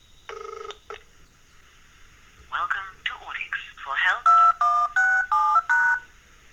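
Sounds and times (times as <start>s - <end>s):
phone keypad DTMF tones dialing voicemail: 0.3s - 1.0s, 4.3s - 6.1s.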